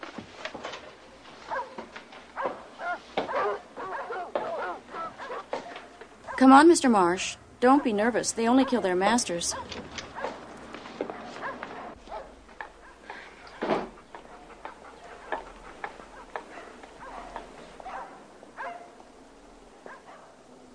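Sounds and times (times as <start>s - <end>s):
steady hum: 0.0s - 20.7s
large Doberman barking: 1.4s - 6.5s, 7.7s - 10.4s, 11.0s - 19.0s, 19.8s - 20.4s
speech: 6.4s - 9.8s.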